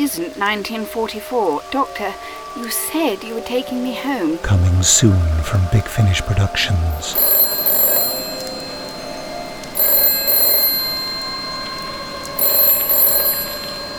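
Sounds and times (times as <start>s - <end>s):
speech: 0.1s - 7.4s
bright metallic telephone bell ringing: 7.0s - 13.9s.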